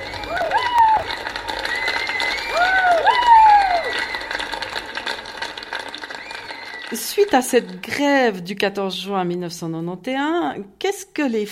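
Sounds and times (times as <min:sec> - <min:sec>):
high whoops and drawn-out shouts: 0:00.0 - 0:04.5, 0:06.2 - 0:07.0
crowd of women cheering in the courtyard of an apartment building: 0:00.0 - 0:05.0, 0:06.0 - 0:07.2
speech: 0:07.3 - 0:11.5.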